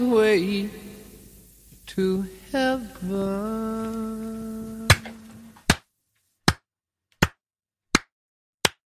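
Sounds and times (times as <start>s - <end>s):
speech: 0.0s - 0.8s, 1.9s - 4.7s
noisy burst: 0.0s - 5.7s
slow sharp hand claps: 6.5s - 8.8s.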